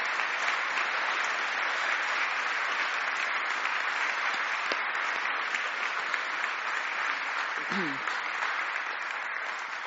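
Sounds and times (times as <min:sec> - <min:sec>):
audience applauding: 0:00.0 - 0:09.8
faint voice: 0:07.7 - 0:08.1.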